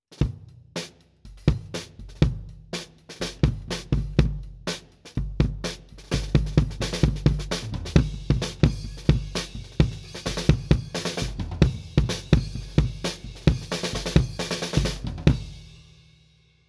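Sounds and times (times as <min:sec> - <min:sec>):
kick drum outside batter head recorded with MD421: 0:01.4 - 0:02.7, 0:03.4 - 0:15.6.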